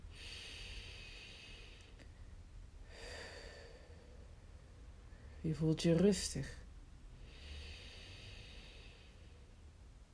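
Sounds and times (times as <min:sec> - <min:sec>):
slow deep breathing during a guided meditation: 0:00.0 - 0:05.4, 0:07.1 - 0:09.7
speech: 0:05.4 - 0:06.6.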